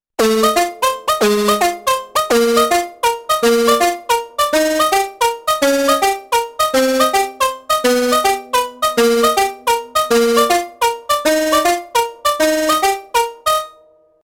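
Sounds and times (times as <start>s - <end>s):
OP-1 digital synthesizer: 0.2s - 13.9s.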